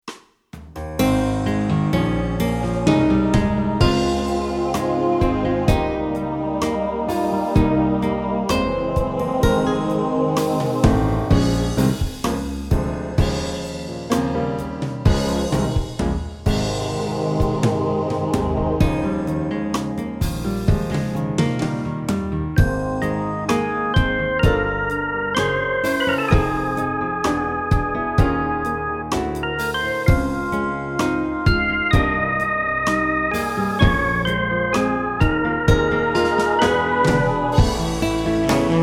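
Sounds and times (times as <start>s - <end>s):
soft gospel music: 1.0s - 38.8s.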